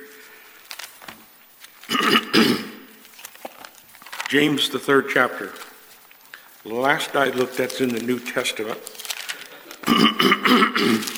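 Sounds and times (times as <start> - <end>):
person clearing phlegm from the throat: 1.9 - 2.9, 9.8 - 11.1
speech: 2.4 - 2.7, 4.3 - 5.6, 6.6 - 9.0, 9.9 - 11.1.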